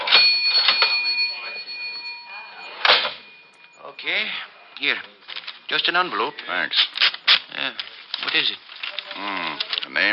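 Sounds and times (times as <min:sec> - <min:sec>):
cash register mechanical clacks: 0:00.0 - 0:02.0, 0:02.6 - 0:03.6
cash register bell ringing: 0:00.0 - 0:04.4
speech: 0:04.0 - 0:08.6, 0:09.2 - 0:10.1.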